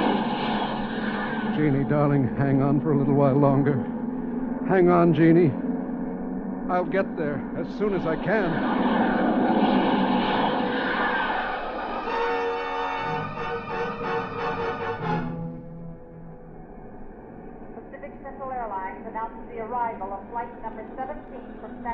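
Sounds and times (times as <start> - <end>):
airliner jet engines roaring while taxiing to the ramp: 0.0 - 21.9
speech: 1.6 - 4.0, 4.7 - 5.7, 6.7 - 9.7, 19.9 - 21.9.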